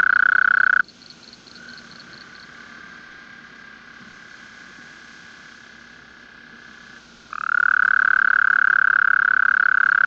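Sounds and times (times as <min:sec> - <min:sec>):
Bufonidae toad trilling: 0:00.0 - 0:00.8, 0:07.3 - 0:10.0.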